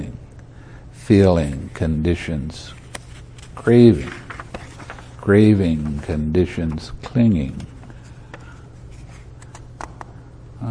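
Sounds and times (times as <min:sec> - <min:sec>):
steady low hum: 0:00.0 - 0:10.6
speech: 0:01.1 - 0:02.8, 0:03.6 - 0:04.2, 0:05.2 - 0:07.7
thick paper pages rustling as they are handled: 0:02.7 - 0:10.0.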